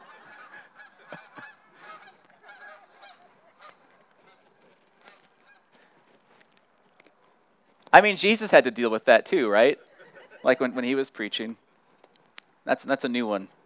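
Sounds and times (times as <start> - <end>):
flock of geese honking outdoors: 0.0 - 6.4
speech: 8.0 - 11.6, 12.7 - 13.6.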